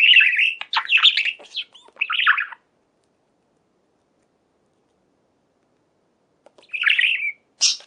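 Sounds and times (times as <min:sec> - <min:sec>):
budgerigar chattering: 0:00.0 - 0:02.6, 0:06.6 - 0:07.8.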